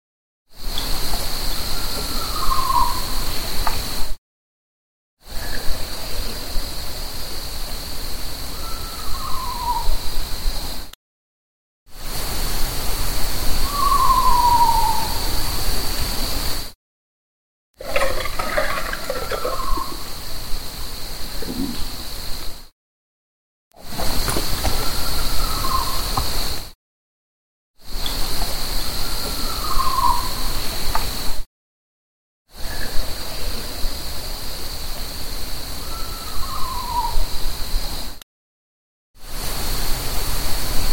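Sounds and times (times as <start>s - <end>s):
hiss: 0.6s - 4.1s, 5.2s - 10.9s, 12.0s - 16.8s, 17.8s - 22.7s, 27.9s - 31.4s, 32.6s - 38.2s, 39.2s - 40.9s
steady high insect drone: 0.6s - 4.1s, 5.2s - 10.9s, 12.0s - 16.7s, 17.9s - 22.7s, 23.8s - 26.8s, 27.8s - 31.4s, 32.6s - 38.2s
owl hooting at night: 1.6s - 3.2s, 8.6s - 10.0s, 13.6s - 15.3s, 24.7s - 26.3s, 29.3s - 30.5s, 35.8s - 37.3s.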